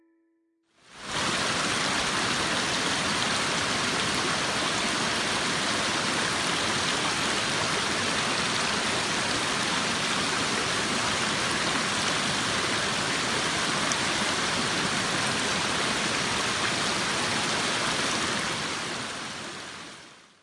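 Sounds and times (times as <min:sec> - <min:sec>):
flowing river water: 0:00.9 - 0:20.4.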